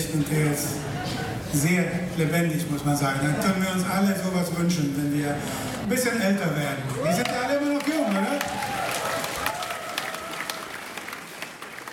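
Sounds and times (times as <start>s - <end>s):
speech: 0.1s - 8.6s
concert audience applause at a jazz concert: 6.9s - 11.9s.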